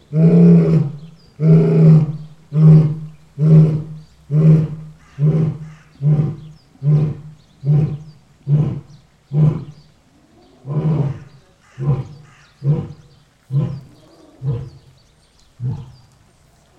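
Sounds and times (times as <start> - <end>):
lion grunting roars: 0.0 - 15.0, 15.6 - 16.7.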